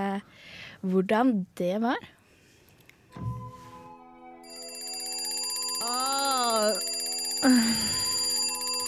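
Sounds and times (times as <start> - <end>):
speech: 0.2 - 2.2, 5.8 - 8.0
soft thump: 3.2 - 3.5
alarm clock ringing with electronic bell-like tone: 4.4 - 8.8.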